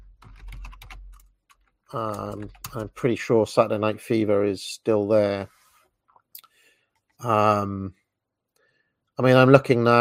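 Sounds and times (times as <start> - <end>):
computer keyboard typing: 0.0 - 3.0
speech: 1.9 - 5.6, 7.2 - 8.0, 9.2 - 9.9.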